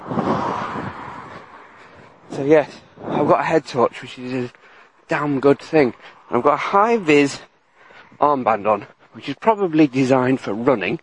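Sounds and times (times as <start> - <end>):
car passing by on a pitch-black road: 0.0 - 3.6
speech: 2.4 - 7.5, 8.2 - 11.0.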